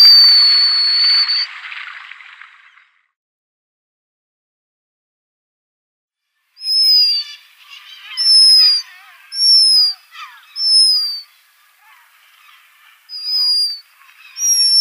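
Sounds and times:
Black guillemot shrill whistles: 0.0s - 1.5s, 6.6s - 7.4s, 8.0s - 11.3s, 13.1s - 13.8s, 14.4s - 14.8s.

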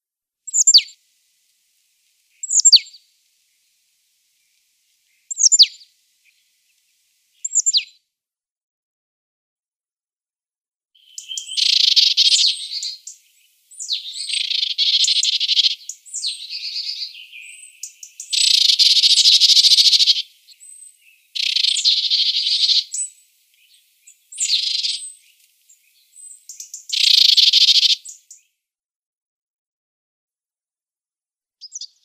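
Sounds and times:
Marsh Tit calls: 0.5s - 1.0s, 2.2s - 8.0s, 11.0s - 28.5s, 31.6s - 32.0s.

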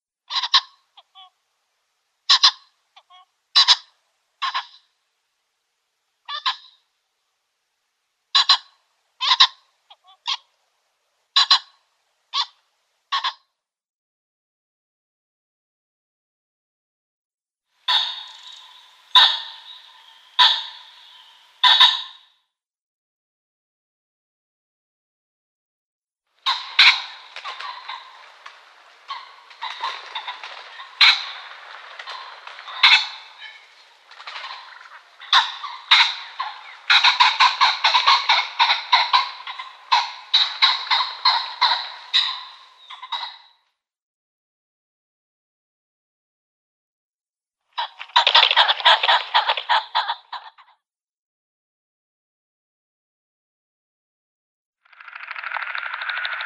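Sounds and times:
male Ring-necked Pheasant calls: 0.3s - 1.4s, 2.3s - 5.0s, 6.3s - 6.9s, 8.3s - 10.5s, 11.3s - 13.4s, 17.8s - 22.3s, 26.4s - 43.6s, 47.8s - 50.7s.

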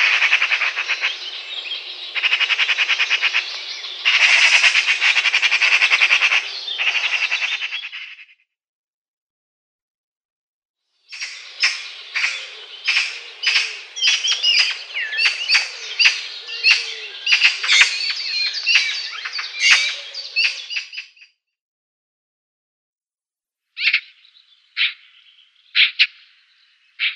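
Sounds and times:
Eurasian magpie rattling loudly in a dense chatter: 0.0s - 1.2s, 2.2s - 7.9s, 11.2s - 20.7s.

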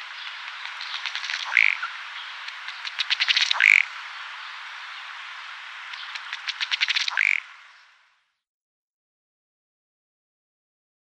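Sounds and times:
male ruddy duck display call: 1.0s - 1.9s, 3.3s - 3.9s, 6.8s - 7.4s.

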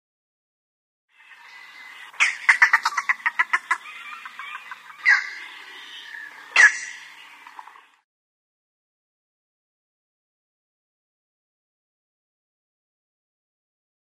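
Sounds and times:
Green Heron calls: 1.2s - 7.9s.

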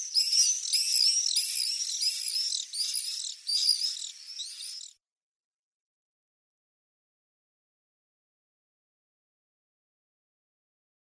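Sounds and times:
Common Swift giving harsh screaming response calls on the nest: 0.0s - 5.0s.

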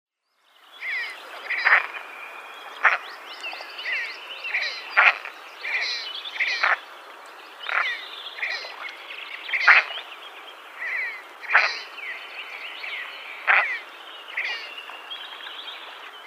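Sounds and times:
Red-breasted Merganser pair display: 0.8s - 2.1s, 2.7s - 3.1s, 3.8s - 6.8s, 7.7s - 8.8s, 9.4s - 10.1s, 10.8s - 12.2s, 13.4s - 14.8s.

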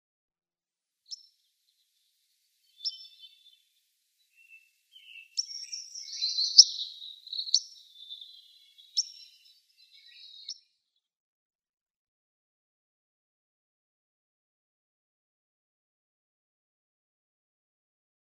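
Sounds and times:
White-crowned Sparrow calling: 2.6s - 10.6s.

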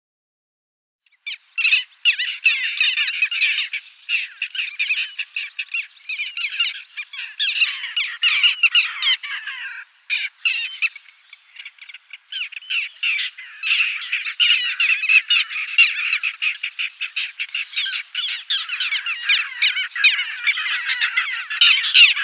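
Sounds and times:
little gull calls in a dense chatter of harsh notes: 1.2s - 22.2s.

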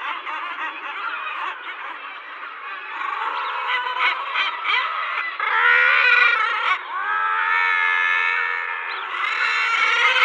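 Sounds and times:
guillemot colony calling: 0.0s - 10.2s.

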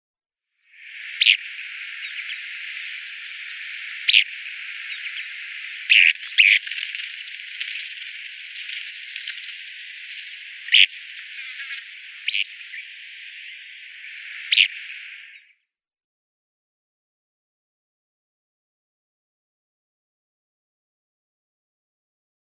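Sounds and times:
Oriental Skylark calls: 0.8s - 15.4s.

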